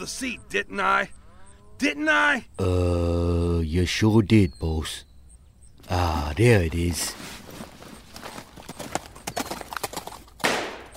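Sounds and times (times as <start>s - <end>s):
speech: 0.0s - 1.2s, 1.8s - 5.1s, 5.9s - 7.3s
horse hooves clip-clopping: 7.0s - 10.9s.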